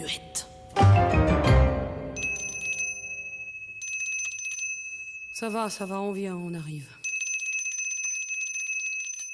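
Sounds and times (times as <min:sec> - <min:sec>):
speech: 0:00.1 - 0:00.9, 0:05.4 - 0:07.0
small bell tinkling: 0:02.2 - 0:09.3.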